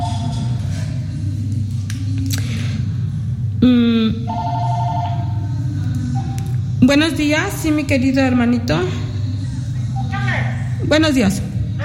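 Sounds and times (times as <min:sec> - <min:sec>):
low hum: 0:00.0 - 0:11.8
electronic telephone ringing for an incoming call: 0:04.3 - 0:05.4
speech: 0:06.9 - 0:09.0, 0:10.9 - 0:11.8.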